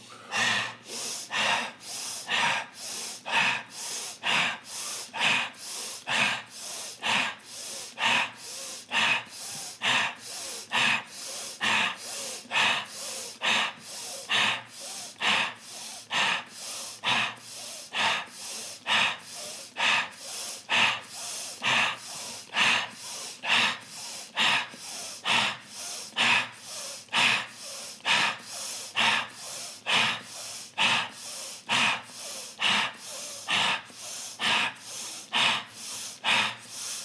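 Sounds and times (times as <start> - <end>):
rapid rhythmic breathing in a breathing exercise: 0.0 - 37.0.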